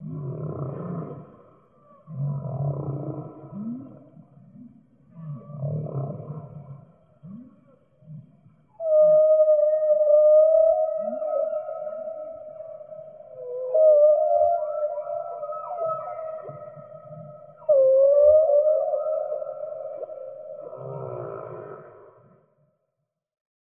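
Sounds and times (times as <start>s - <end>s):
whale calls with moaning groans, rising whoops and long tonal note: 0.0s - 22.5s.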